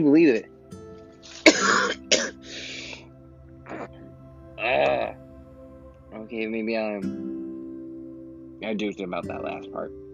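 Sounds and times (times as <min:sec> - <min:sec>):
speech: 0:00.0 - 0:00.5, 0:06.3 - 0:07.3, 0:08.6 - 0:10.0
throat clearing: 0:01.3 - 0:02.4, 0:03.7 - 0:03.9
sick person coughing: 0:01.3 - 0:03.0.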